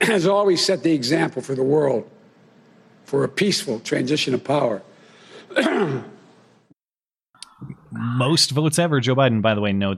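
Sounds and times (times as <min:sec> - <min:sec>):
speech: 0:00.0 - 0:02.2, 0:03.1 - 0:04.9, 0:05.5 - 0:06.2, 0:07.6 - 0:09.9
person coughing into a hand: 0:05.5 - 0:06.3.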